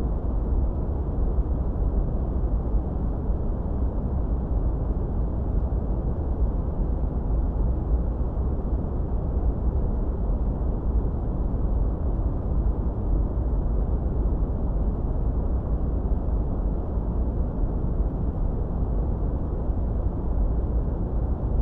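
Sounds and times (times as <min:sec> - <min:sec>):
dark heavy white noise with deep low rumble: 0:00.0 - 0:21.6.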